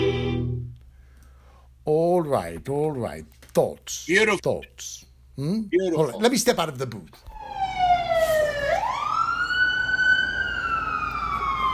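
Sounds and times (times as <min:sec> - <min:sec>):
speech: 0:02.2 - 0:07.6
ambulance or fire truck siren wailing while driving by: 0:07.3 - 0:11.7.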